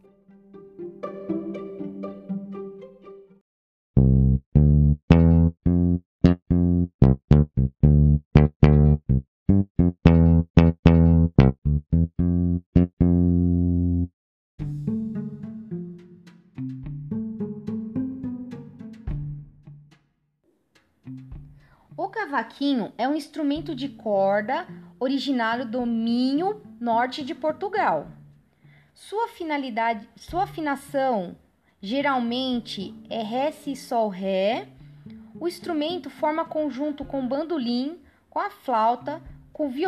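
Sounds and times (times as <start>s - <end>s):
electric bass guitar playing deep plucked notes: 4.0s - 19.9s, 21.1s - 21.7s
speech: 22.6s - 28.2s, 29.0s - 34.8s, 35.4s - 39.8s.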